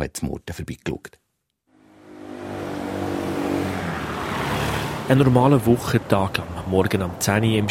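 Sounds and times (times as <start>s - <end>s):
speech: 0.0s - 1.2s, 5.1s - 7.7s
car driving past on an old town main street: 1.7s - 6.0s.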